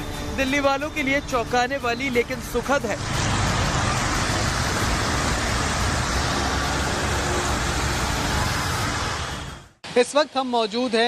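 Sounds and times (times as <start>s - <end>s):
speech: 0.4s - 3.3s, 10.0s - 11.0s
cars passing on a wet road: 2.4s - 10.9s
heavy rain pouring down: 2.9s - 10.5s.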